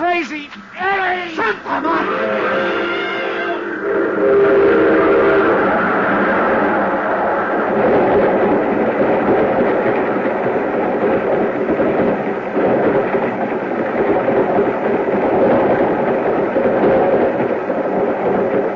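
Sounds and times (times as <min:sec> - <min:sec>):
freight train rumbling and rattling: 0:00.0 - 0:18.7
tonal horn-like blare of a freight train: 0:01.4 - 0:06.6.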